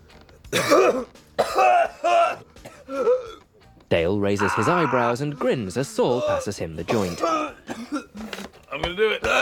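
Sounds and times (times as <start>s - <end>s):
speech: 0.5s - 3.2s, 3.9s - 9.3s
man coughing hard after inhaling smoke: 0.5s - 3.4s, 6.2s - 8.3s.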